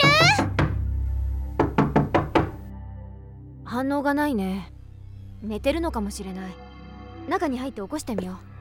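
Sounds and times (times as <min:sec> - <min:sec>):
knuckles knocking on a door: 0:00.0 - 0:01.0, 0:01.6 - 0:02.7
speech: 0:03.7 - 0:04.7, 0:05.4 - 0:06.6, 0:07.2 - 0:08.5.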